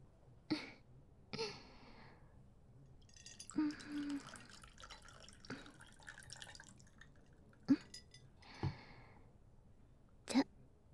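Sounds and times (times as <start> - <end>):
tequila being poured into glasses: 3.0 - 8.4.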